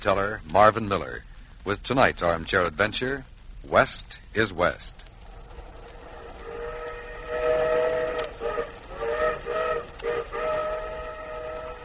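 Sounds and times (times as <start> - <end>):
speech: 0.0 - 5.0
train rolling along the rails: 4.9 - 11.8
train whistle blasts: 6.2 - 11.8.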